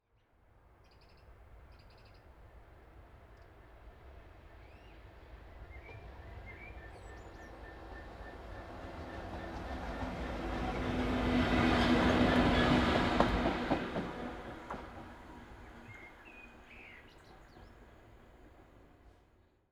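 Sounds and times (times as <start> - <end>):
train passing by in the countryside: 2.3 - 19.7.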